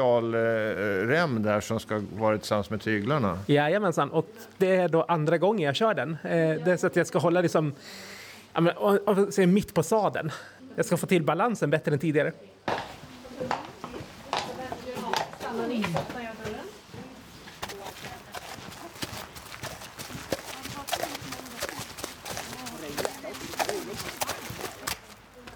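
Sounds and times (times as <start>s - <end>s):
speech: 0.0s - 12.8s
horse hooves clopping at a walk in a small indoor riding arena: 12.7s - 25.5s.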